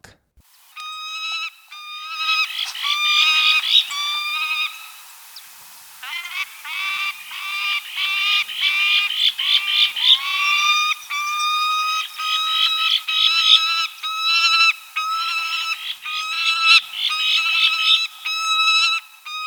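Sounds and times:
peregrine falcon calling in South America: 0:00.6 - 0:19.4.

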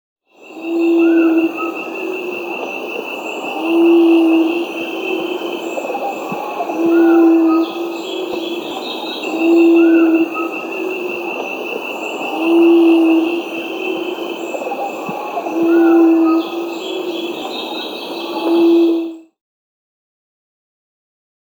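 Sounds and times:
Ruddy Quail-Dove Geotrygon montana in South America: 0:00.5 - 0:19.2.

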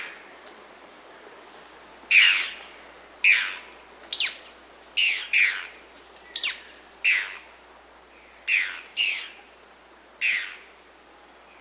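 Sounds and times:
Dusky-throated Antshrike Thamnomanes ardesiacus calling in Peru: 0:02.0 - 0:10.7.

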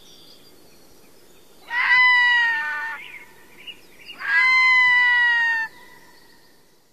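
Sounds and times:
Red-throated loon giving nasal wailing calls in North America: 0:01.6 - 0:03.0, 0:04.2 - 0:05.8.

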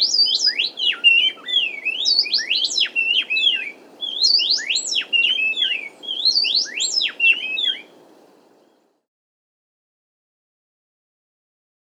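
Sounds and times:
Inca wren song in South America: 0:00.0 - 0:09.0
low hiss: 0:00.0 - 0:09.1.

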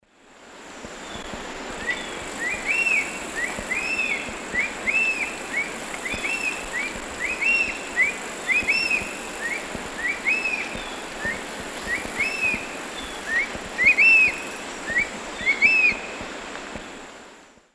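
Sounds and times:
Spizaetus tyrannus soar song in South American Eastern Lowlands: 0:01.8 - 0:16.3.

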